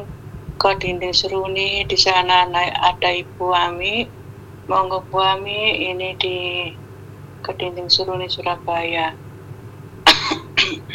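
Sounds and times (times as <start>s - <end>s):
speech: 0.0s - 6.8s, 7.4s - 9.2s
harsh breathy coughs with throat clearing: 10.1s - 10.9s.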